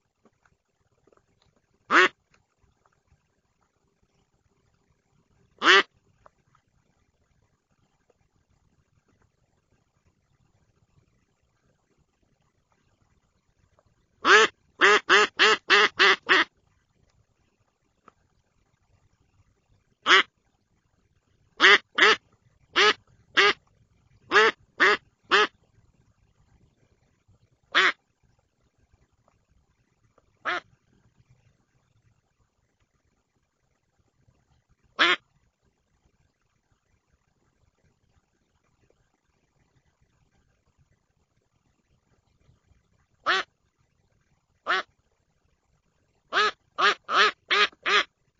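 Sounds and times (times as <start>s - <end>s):
duck: 1.9s - 2.2s, 5.6s - 6.0s, 14.2s - 16.5s, 20.0s - 20.3s, 21.6s - 23.6s, 24.3s - 25.6s, 27.7s - 28.0s, 30.4s - 30.7s, 35.0s - 35.2s, 43.2s - 43.5s, 44.6s - 44.9s, 46.3s - 48.1s.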